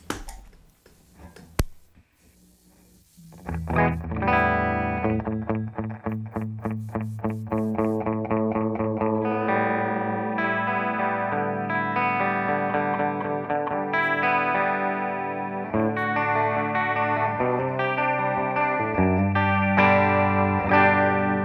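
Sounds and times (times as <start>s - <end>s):
electric guitar through a digital chorus effect at low intensity: 3.1s - 21.4s.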